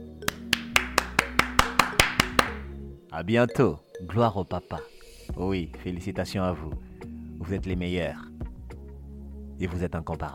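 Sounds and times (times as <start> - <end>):
crisp hand claps: 0.2 - 2.7
speech: 3.1 - 8.3, 9.6 - 10.3.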